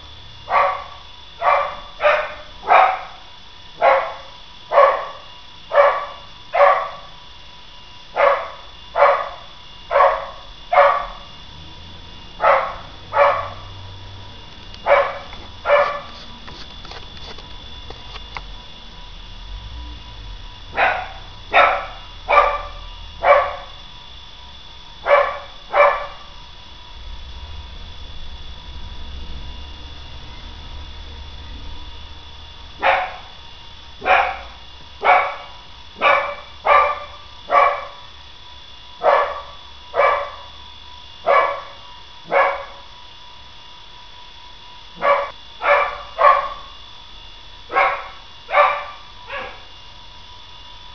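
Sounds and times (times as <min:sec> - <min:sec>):
animal barking: 0:00.5 - 0:07.2, 0:08.1 - 0:11.4, 0:12.3 - 0:13.9, 0:14.8 - 0:16.3, 0:20.7 - 0:23.8, 0:25.0 - 0:26.4, 0:32.7 - 0:38.1, 0:39.0 - 0:40.6, 0:41.2 - 0:42.9, 0:45.0 - 0:46.8, 0:47.7 - 0:49.8.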